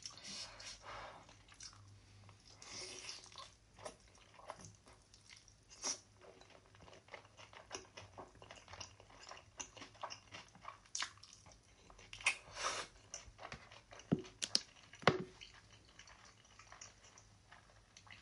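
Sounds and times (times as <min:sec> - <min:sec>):
quiet hum: 0:00.0 - 0:18.2
wet chewing of noodles with chicken and crunchy radish: 0:01.3 - 0:18.2.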